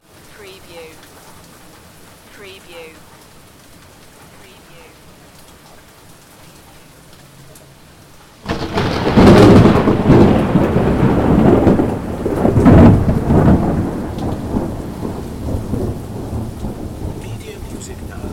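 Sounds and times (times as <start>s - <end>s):
heavy rain in Manchester: 0.0s - 18.3s
thunder in Manchester: 8.4s - 18.3s.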